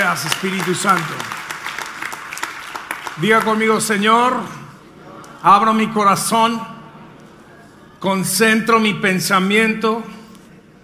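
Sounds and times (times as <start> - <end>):
audience applause: 0.0 - 3.9
speech: 0.1 - 1.4, 3.2 - 4.6, 5.4 - 6.8, 8.0 - 10.2.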